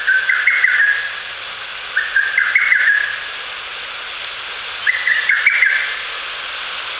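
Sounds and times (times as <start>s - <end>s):
lesser cuckoo whistled song: 0.0s - 1.2s, 2.0s - 3.3s, 4.8s - 6.0s
steady hiss: 0.0s - 6.9s.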